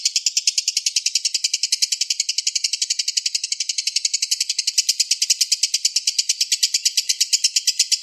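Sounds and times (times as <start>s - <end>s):
Oriental magpie-robin singing: 0.0s - 8.0s.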